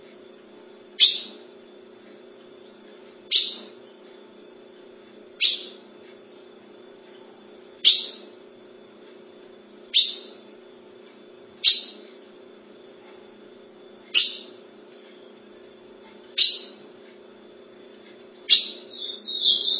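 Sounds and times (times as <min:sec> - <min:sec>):
faint low hum: 0:00.0 - 0:19.7
ultramarine grosbeak chip calls: 0:01.0 - 0:01.4, 0:03.3 - 0:03.8, 0:05.4 - 0:05.8, 0:07.8 - 0:08.3, 0:09.9 - 0:10.4, 0:11.6 - 0:12.0, 0:14.1 - 0:14.6, 0:16.4 - 0:16.8, 0:18.5 - 0:19.7.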